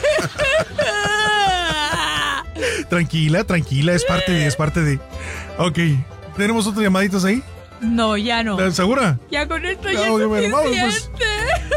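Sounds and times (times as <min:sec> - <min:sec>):
laughter: 0:00.0 - 0:02.7, 0:04.0 - 0:04.8, 0:10.5 - 0:11.7
person crying and whimpering: 0:00.0 - 0:02.9, 0:03.9 - 0:04.8
speech: 0:02.9 - 0:11.7.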